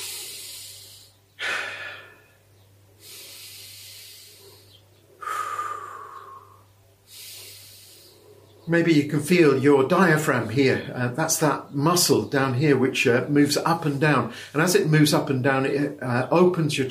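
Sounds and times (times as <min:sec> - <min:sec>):
slow deep breathing: 0:00.0 - 0:08.7, 0:14.3 - 0:14.6
speech: 0:08.7 - 0:16.8.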